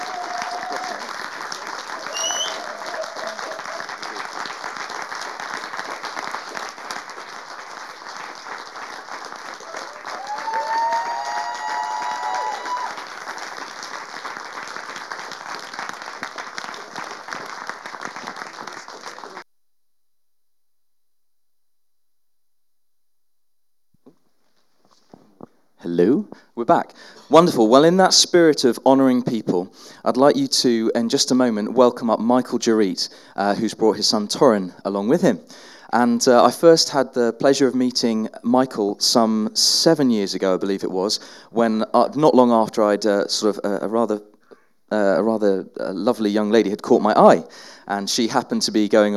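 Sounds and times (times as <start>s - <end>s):
large church audience standing and applauding: 0.0s - 19.4s
cheer or whistle from a church audience: 2.0s - 3.8s, 9.6s - 13.0s
speech: 26.7s - 44.3s, 44.9s - 49.1s.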